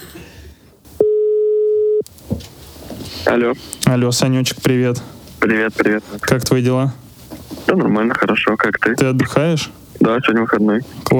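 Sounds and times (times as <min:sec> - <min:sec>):
telephone ringing tone while placing a call: 0:01.0 - 0:02.0
speech: 0:03.3 - 0:07.0, 0:07.7 - 0:11.1.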